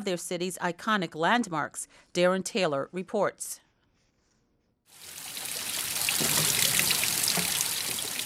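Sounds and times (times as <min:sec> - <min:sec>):
speech: 0:00.0 - 0:03.6
spring water from Table Mountain flowing and trickling at Spring Road in Newlands, Cape Town: 0:04.9 - 0:08.2.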